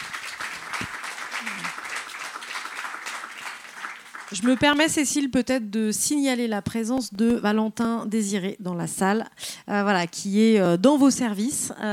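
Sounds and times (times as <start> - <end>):
crowd applauding: 0.0 - 4.9
speech: 4.3 - 11.9.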